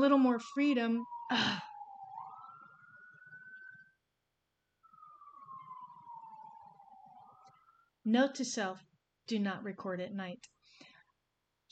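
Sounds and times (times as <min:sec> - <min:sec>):
speech: 0:00.0 - 0:01.7, 0:08.0 - 0:10.6
emergency vehicle siren wailing outside: 0:00.0 - 0:08.0.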